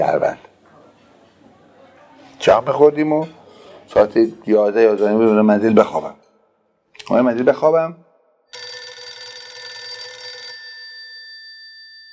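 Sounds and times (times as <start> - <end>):
speech: 2.5 - 6.2, 7.1 - 8.0
telephone ringing: 8.6 - 12.1.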